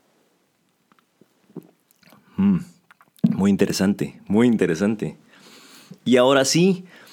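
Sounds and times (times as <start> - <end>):
person sipping and swallowing beer: 1.0 - 3.4
speech: 2.4 - 2.8, 3.4 - 5.2, 6.0 - 7.0.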